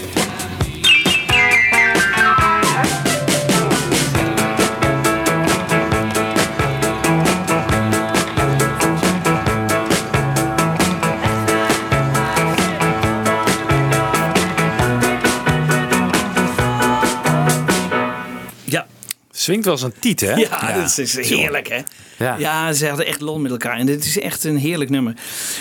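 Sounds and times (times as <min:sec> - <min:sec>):
drums playing a steady driving beat in a studio recording: 0:00.0 - 0:18.0
piano playing sustained chords in a studio recording: 0:00.8 - 0:18.5
speech: 0:19.5 - 0:25.5.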